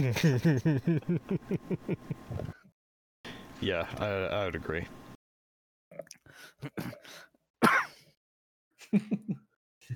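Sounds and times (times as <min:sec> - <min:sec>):
speech: 0:00.0 - 0:02.6, 0:03.6 - 0:05.0, 0:06.0 - 0:07.8, 0:08.9 - 0:09.9
person coughing: 0:06.6 - 0:08.1.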